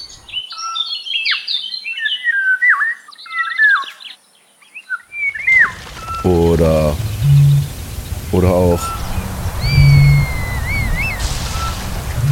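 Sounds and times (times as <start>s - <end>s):
odd varied bird calls being played: 0.0s - 12.3s
speech: 6.2s - 7.1s, 8.3s - 9.0s
low buzzing harmonic-rich tone: 6.8s - 12.3s.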